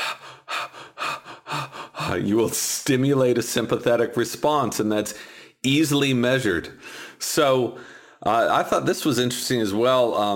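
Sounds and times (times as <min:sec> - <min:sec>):
rapid panicked gasping breaths: 0:00.0 - 0:02.6, 0:05.1 - 0:05.6, 0:06.8 - 0:08.2
speech: 0:02.1 - 0:10.3.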